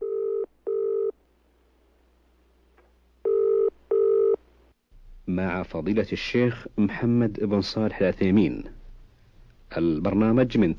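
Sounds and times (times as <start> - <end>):
telephone ringing in electronic tone bursts: 0.0 - 1.1, 3.3 - 4.4
speech: 5.4 - 8.8, 9.7 - 10.7.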